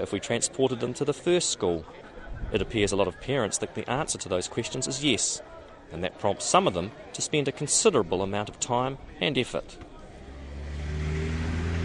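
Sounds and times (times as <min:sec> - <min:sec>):
speech: 0:00.0 - 0:09.9
morning rush hour car and bus traffic rumbling: 0:09.9 - 0:11.8
vehicle engine revving as it accelerates past: 0:10.2 - 0:11.8.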